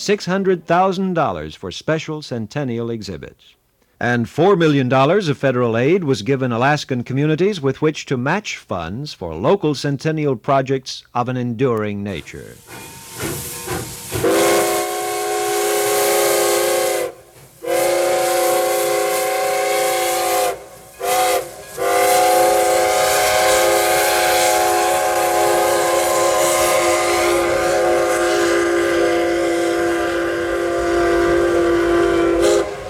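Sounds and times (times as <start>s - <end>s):
speech: 0.0s - 13.4s
small antique steam train whistle in Anchorage Alaska: 12.6s - 32.8s.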